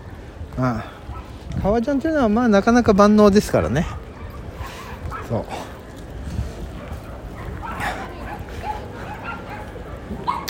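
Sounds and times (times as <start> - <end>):
speech: 0.6 - 4.0, 5.3 - 5.6
dogs yipping and whimpering in a park: 4.0 - 5.7, 6.8 - 10.4.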